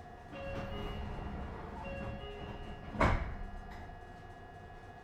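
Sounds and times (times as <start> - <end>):
rumble and hum inside a train car: 0.2 - 4.9
train car sliding doors opening with a whoosh and clunk: 0.4 - 3.9.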